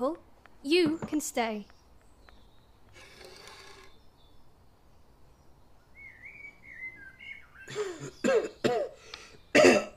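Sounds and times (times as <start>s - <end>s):
speech: 0.0s - 1.8s
thin faint whistling tone: 5.8s - 7.7s
person coughing in harsh rasping bursts: 7.7s - 9.9s.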